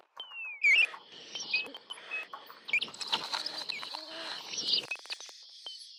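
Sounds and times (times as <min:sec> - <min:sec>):
birds chirping and whistling: 0:00.4 - 0:04.9.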